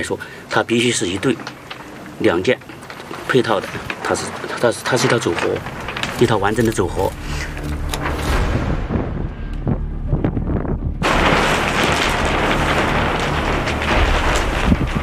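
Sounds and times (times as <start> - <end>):
speech: 0.0 - 1.6, 2.2 - 2.5, 3.3 - 7.8
strong outdoor wind buffeting the microphone: 5.6 - 15.0.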